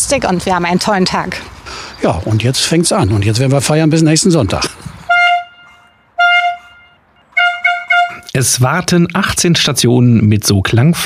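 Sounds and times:
speech: 0.1 - 5.0, 8.4 - 11.0
handheld horn blasts: 5.0 - 8.4.

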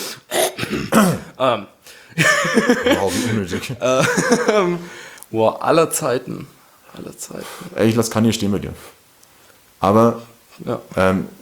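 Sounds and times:
throat clearing: 0.3 - 1.3
speech: 0.6 - 9.0, 9.8 - 11.4
laughter: 2.2 - 5.0.

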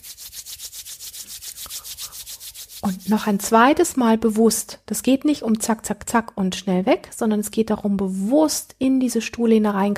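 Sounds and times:
palms rubbed briskly together to warm them: 0.0 - 3.6
speech: 2.8 - 9.9.

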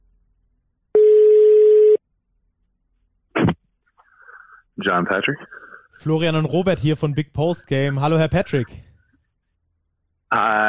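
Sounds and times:
telephone ring-back tone while placing a call: 1.0 - 2.0
speech: 4.8 - 8.9, 10.3 - 10.6.

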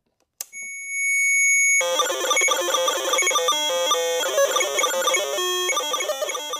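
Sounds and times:
buzzy synthesized beeps from DIY sound machine kit: 1.8 - 6.5
steady piercing electronic tone from DIY sound machine kit: 1.8 - 6.5.

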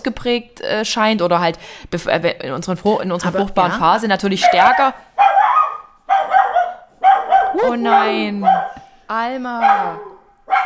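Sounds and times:
speech: 0.0 - 5.2, 7.6 - 10.6
small female watchdog barking: 4.4 - 8.8, 9.6 - 10.6.

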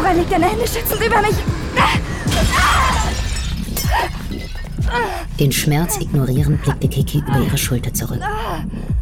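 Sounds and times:
speech: 0.1 - 3.2, 3.9 - 9.0
window glass shattering: 2.3 - 4.9
glass fragments tinkling: 2.4 - 4.9.

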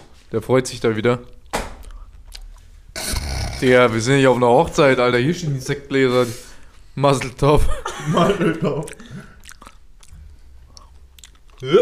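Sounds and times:
speech: 0.3 - 1.4, 3.6 - 9.3, 11.6 - 11.7
noisy chewing or munching: 1.4 - 4.0, 8.8 - 11.6
wet mouth clicks: 1.8 - 3.7, 8.8 - 11.7
laughter: 7.6 - 9.0.

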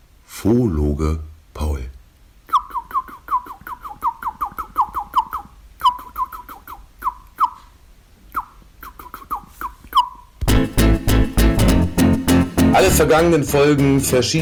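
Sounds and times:
speech: 0.4 - 1.7, 13.0 - 14.4
short sharp bird calls in bursts: 2.5 - 10.4
loud dense burst of music: 10.5 - 14.4.

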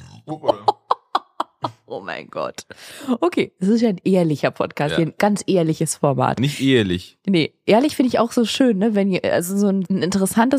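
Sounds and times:
loud croaky burp: 0.0 - 0.5
speech: 0.3 - 0.7, 1.9 - 10.5
laughter: 0.3 - 1.9.

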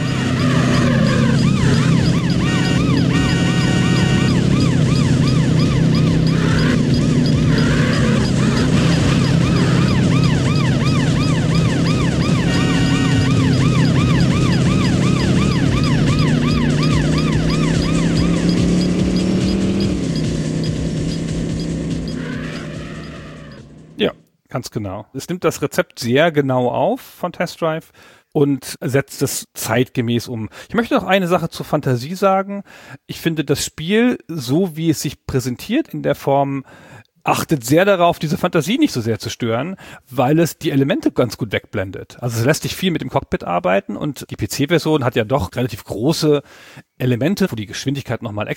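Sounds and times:
police siren wailing in a racing video game: 0.0 - 23.8
luxury sports car engine roaring in a racing video game: 0.0 - 24.0
speech: 24.7 - 48.5.

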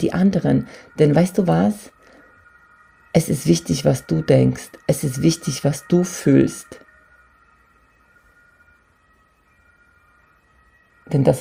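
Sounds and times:
speech: 0.0 - 2.0, 3.1 - 6.8, 11.1 - 11.3
emergency vehicle sirens wailing outdoors: 0.0 - 11.3.

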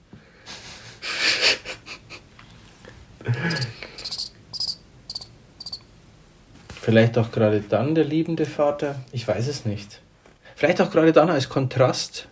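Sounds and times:
crickets chirping: 3.3 - 5.9
speech: 6.9 - 10.0, 10.6 - 12.2.

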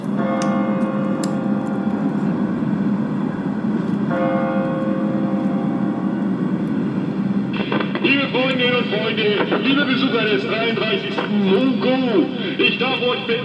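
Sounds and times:
large church bell striking the hour: 0.0 - 7.7
crowd noise and murmured voices: 7.5 - 13.4
speech: 9.7 - 13.4.

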